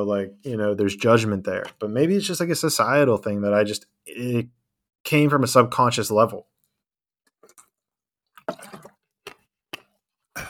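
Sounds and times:
speech: 0.0s - 6.5s
person drinking water with sips and gulps: 7.2s - 10.4s.

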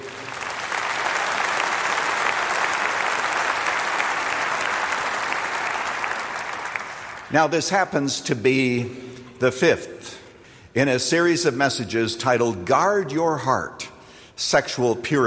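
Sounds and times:
large crowd applauding at a church worship service: 0.0s - 7.3s
speech: 7.3s - 10.2s, 10.8s - 15.2s.

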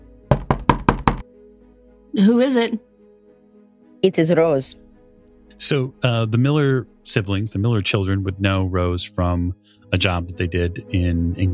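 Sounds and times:
quick knocking on a wooden door: 0.3s - 1.3s
speech: 2.2s - 2.9s, 4.0s - 4.8s, 5.6s - 11.5s.

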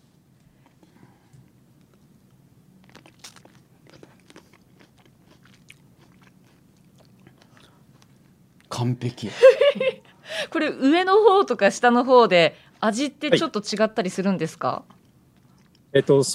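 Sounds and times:
person biting and chewing an expensive food: 1.8s - 8.7s
speech: 8.8s - 14.9s, 15.9s - 16.3s
laughter: 9.3s - 10.1s.

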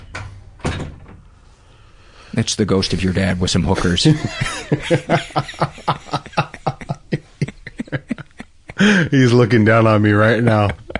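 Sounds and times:
door swinging shut with a thud and rattle: 0.0s - 1.2s
quiet hum: 0.0s - 10.9s
speech: 2.3s - 6.2s, 8.8s - 10.8s
laughter: 3.8s - 10.9s.

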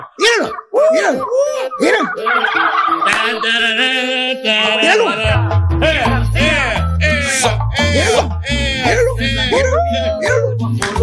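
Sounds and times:
turkey gobbling: 0.0s - 11.0s
laughter: 0.1s - 11.0s
speech: 0.4s - 6.5s.

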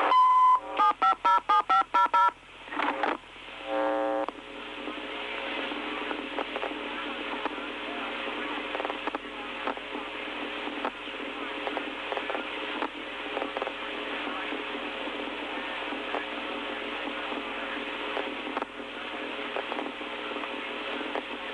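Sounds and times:
low steady hum: 0.0s - 21.5s
telephone keypad tones entering a phone number: 0.1s - 2.3s.

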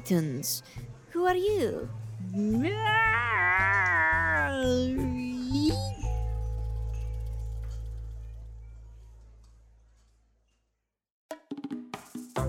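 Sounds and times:
speech: 0.1s - 3.9s
person imitating a cat's meow: 2.4s - 6.0s
low hum: 5.1s - 10.0s.

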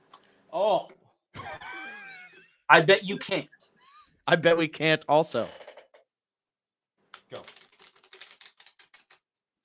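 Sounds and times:
speech: 0.6s - 1.0s, 2.7s - 3.6s, 4.3s - 5.6s
laughter: 1.4s - 3.7s
two people shuffling decks of playing cards together: 7.2s - 9.2s.

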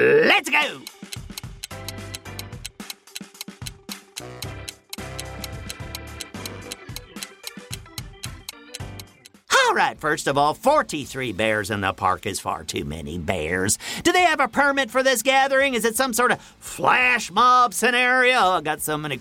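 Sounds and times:
countdown clock ticking: 0.4s - 9.5s
tense musical bed: 0.8s - 9.4s
speech: 9.8s - 19.1s.

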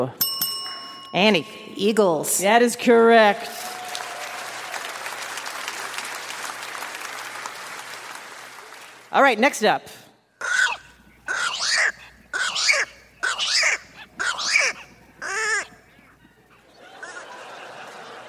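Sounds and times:
speech: 0.0s - 0.2s, 1.1s - 3.8s, 9.2s - 10.0s
bird squawking: 10.4s - 17.6s
laughter: 16.6s - 18.2s.

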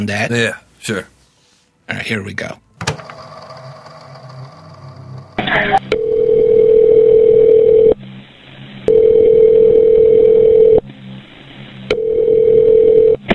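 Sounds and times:
speech: 0.0s - 1.1s, 1.9s - 3.0s
phone line clicking as the call is picked up: 5.8s - 8.0s, 8.9s - 10.8s, 11.9s - 13.2s
telephone ringback tone: 5.9s - 8.0s, 8.9s - 10.8s, 11.9s - 13.2s.

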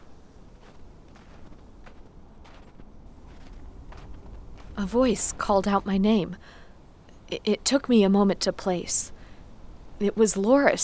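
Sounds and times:
footsteps crunching at a walking pace at a vacant campsite: 0.0s - 6.0s
low rumbling background: 0.0s - 10.8s
speech: 4.8s - 6.6s, 7.3s - 9.2s, 10.0s - 10.8s.

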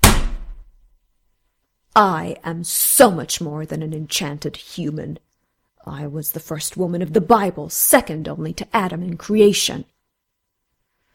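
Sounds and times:
hand slapping down on a tabletop: 0.0s - 0.7s
speech: 2.0s - 9.9s.

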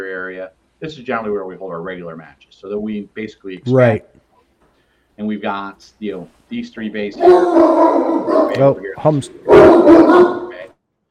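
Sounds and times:
speech: 0.0s - 4.2s, 5.2s - 10.4s
dog barking at a shooting range: 7.2s - 10.7s.

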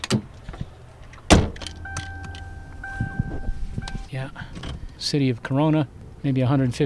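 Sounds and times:
rustling and shuffling of someone settling into a car: 0.4s - 5.0s
car door slamming: 1.2s - 4.9s
dashboard electronic chime tone: 1.6s - 4.1s
speech: 4.2s - 6.8s.

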